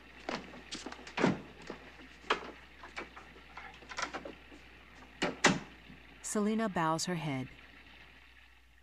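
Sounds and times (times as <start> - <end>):
door being handled as a man walks out: 0.3 - 4.4, 5.2 - 5.7
speech: 6.3 - 7.6.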